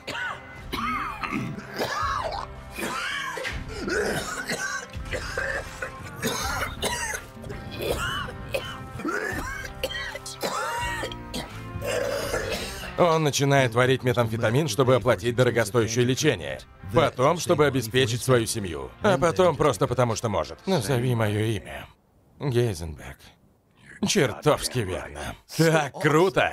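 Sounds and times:
man with cancer coughing heavily: 0.0 - 13.0
throat clearing: 0.0 - 13.0
speech: 13.0 - 23.4, 24.0 - 26.5.

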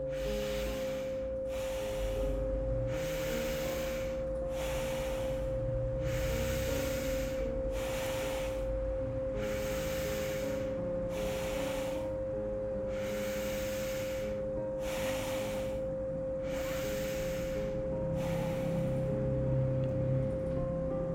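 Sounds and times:
forceful breathing in and out through nostrils: 0.0 - 19.7
low sustained droning tone: 0.0 - 21.1.

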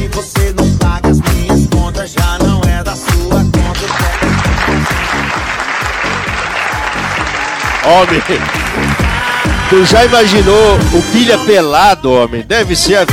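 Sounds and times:
bouncy rhythmic music passage: 0.0 - 13.1
speech: 0.1 - 0.8, 7.9 - 8.8, 9.7 - 13.1
crowd clapping for a dancer: 3.6 - 10.4.

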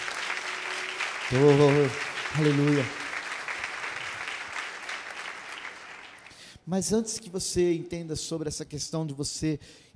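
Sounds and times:
church audience applauding: 0.0 - 6.5
speech: 1.3 - 3.0, 6.7 - 9.9.

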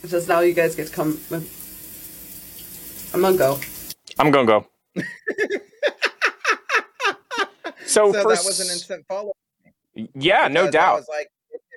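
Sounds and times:
speech: 0.0 - 1.6, 3.1 - 5.7, 7.9 - 9.4, 10.0 - 11.3
shower water running: 0.0 - 4.2
laughter: 5.0 - 8.8.

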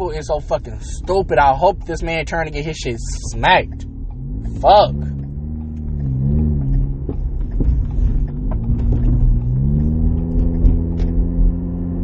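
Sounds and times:
car engine revving on the road: 0.0 - 12.0
road noise: 0.0 - 12.0
speech: 0.1 - 3.9, 4.6 - 5.1.

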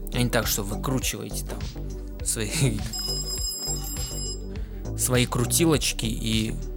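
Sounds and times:
speech: 0.2 - 3.1, 5.0 - 6.7
buzzing alarm-like electronic ringing: 2.9 - 4.5.

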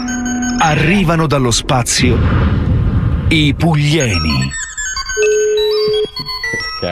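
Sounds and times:
telephone ringing with bright electronic melody: 0.0 - 0.8, 4.5 - 6.8
speech: 0.6 - 2.7, 3.3 - 4.6.

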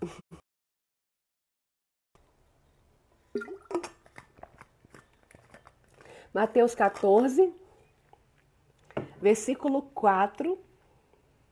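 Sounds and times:
faint smacking noises: 3.2 - 9.9
swallow: 3.3 - 6.3
person sipping water: 3.3 - 9.0
wet mouth clicks: 3.4 - 6.2
speech: 6.3 - 7.6, 9.2 - 10.7.

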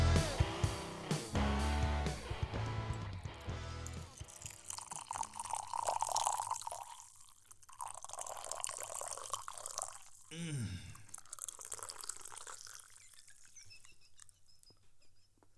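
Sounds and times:
music: 0.0 - 4.2
coffee dripping into a cup: 2.3 - 14.7
coffee pouring into a cup: 2.7 - 14.4.

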